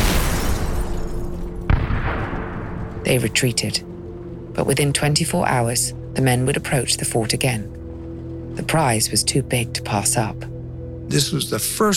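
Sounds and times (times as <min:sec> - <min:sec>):
deep rumbling explosion: 0:00.0 - 0:03.0
speech: 0:03.0 - 0:03.9, 0:04.6 - 0:07.8, 0:08.6 - 0:10.5, 0:11.1 - 0:11.9.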